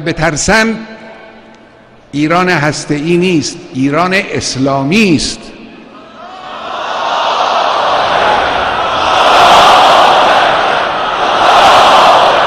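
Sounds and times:
speech: 0:00.0 - 0:01.0, 0:02.1 - 0:05.6
large crowd chanting at a mausoleum in Tehran: 0:06.1 - 0:12.4.

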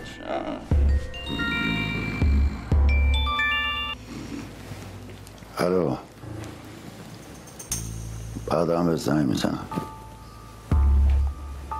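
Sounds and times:
speech: 0:00.2 - 0:01.6, 0:05.6 - 0:06.1, 0:08.5 - 0:09.9
phone ringtone with chiming electronic melody and low beats: 0:00.8 - 0:04.0.

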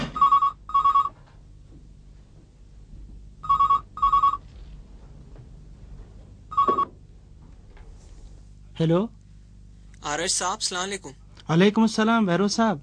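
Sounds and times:
repeating double-pulse ringback tone on an outgoing call: 0:00.1 - 0:01.2, 0:03.4 - 0:04.5, 0:06.5 - 0:06.9
speech: 0:08.8 - 0:09.2, 0:10.2 - 0:12.8.

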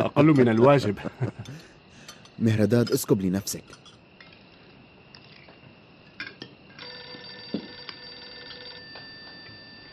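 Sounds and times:
speech: 0:00.1 - 0:01.7, 0:02.4 - 0:03.9
telephone ringing with a trilling electronic bell tone: 0:06.7 - 0:09.9.

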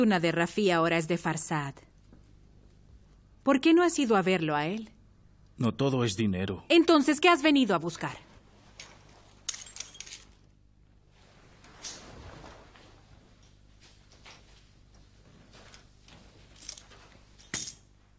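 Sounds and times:
speech: 0:00.0 - 0:01.9, 0:03.4 - 0:05.0, 0:05.6 - 0:08.3
house keys jangling: 0:16.5 - 0:17.8.

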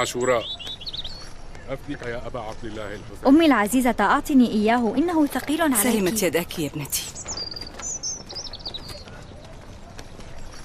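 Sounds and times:
speech: 0:00.0 - 0:00.6, 0:01.7 - 0:07.2
high bird chirps: 0:00.0 - 0:02.2, 0:06.0 - 0:09.8
donkey hooves clopping: 0:00.0 - 0:10.6.

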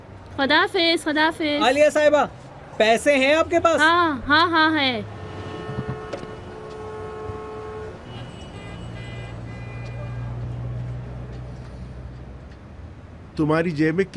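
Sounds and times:
low rumble of congested traffic on a blocked road: 0:00.0 - 0:14.1
speech: 0:00.4 - 0:05.2, 0:13.4 - 0:14.1
car horns honking in congested traffic on a blocked road: 0:03.8 - 0:11.2.

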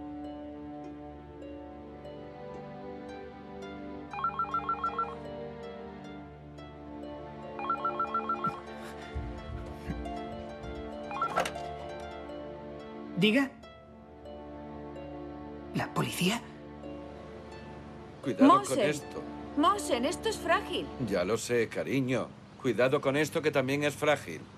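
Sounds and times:
steady musical background: 0:00.0 - 0:24.2
telephone on a chair ringing: 0:04.1 - 0:05.2, 0:07.6 - 0:08.8, 0:11.1 - 0:11.8
low thumps: 0:09.0 - 0:11.1
speech: 0:13.2 - 0:13.6, 0:18.3 - 0:24.5.

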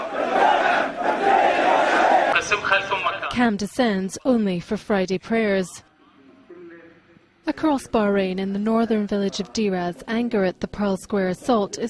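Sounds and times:
furious crowd chanting at a funeral procession in Sitra Bahrain: 0:00.0 - 0:03.2
speech: 0:03.4 - 0:05.9, 0:07.4 - 0:11.8.

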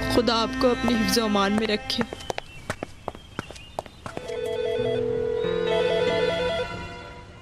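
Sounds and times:
speech: 0:00.1 - 0:02.2
telephone ringing with a warbling electronic tone: 0:04.2 - 0:06.9.

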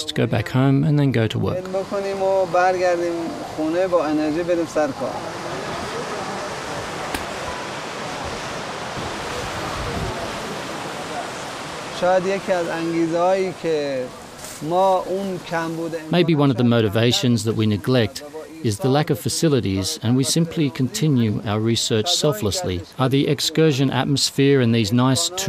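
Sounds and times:
speech: 0:00.0 - 0:05.4, 0:12.0 - 0:25.4
waterfall rushing water: 0:01.6 - 0:17.2.

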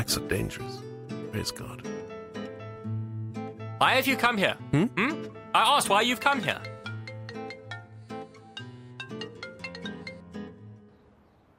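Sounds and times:
speech: 0:00.0 - 0:02.0, 0:03.8 - 0:06.7
phone melodic ringtone ringing unanswered: 0:06.7 - 0:10.4.

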